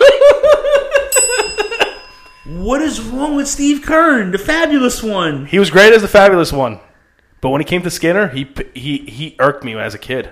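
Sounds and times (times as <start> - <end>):
bell ringing: 1.1 - 4.8
speech: 2.7 - 6.8, 7.4 - 10.3.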